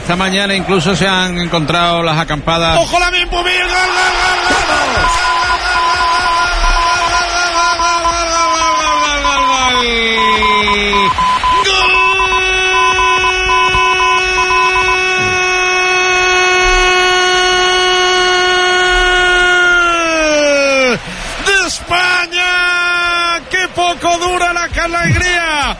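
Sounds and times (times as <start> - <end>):
busy stadium crowd of Croatian fans at a football match in Seville: 0.0 - 25.7
speech: 0.1 - 5.4
loud sustained air horns blaring at a football match in Seville: 5.0 - 19.2.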